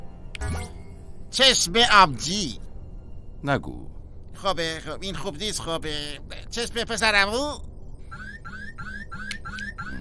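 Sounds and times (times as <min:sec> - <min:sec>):
speech: 0:01.3 - 0:02.6, 0:03.4 - 0:07.7
electronic alarm ringing with rising whooping tones: 0:08.1 - 0:09.9.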